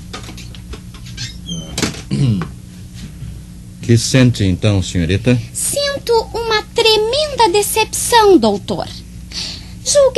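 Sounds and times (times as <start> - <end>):
door swinging shut with a firm clunk: 1.2 - 2.1
speech: 3.9 - 9.0, 9.9 - 10.1.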